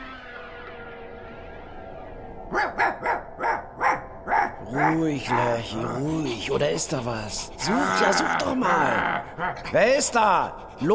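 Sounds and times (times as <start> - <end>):
German Shepherd guard dog barking: 2.5 - 5.0
speech: 4.7 - 10.9.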